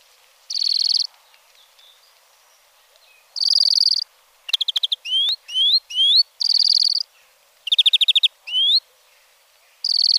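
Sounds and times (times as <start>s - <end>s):
European greenfinch giving buzzy trills: 0.5s - 1.1s, 3.4s - 8.8s, 9.8s - 10.1s.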